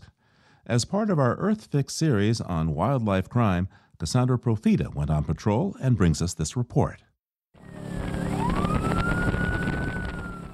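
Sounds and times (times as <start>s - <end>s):
speech: 0.7s - 7.1s
police boat engine roaring: 7.6s - 10.5s
police boat siren wailing during river pursuit: 7.6s - 10.5s.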